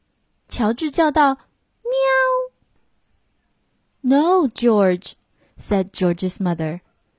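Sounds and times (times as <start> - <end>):
speech: 0.6 - 2.4, 4.0 - 6.8
person voicing a cat's meow: 1.9 - 2.6.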